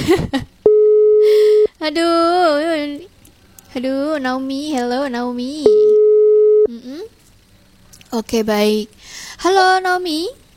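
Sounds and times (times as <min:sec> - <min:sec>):
telephone busy tone: 0:00.7 - 0:01.7, 0:05.7 - 0:06.7
speech: 0:01.9 - 0:03.1, 0:03.8 - 0:06.0, 0:08.1 - 0:10.4.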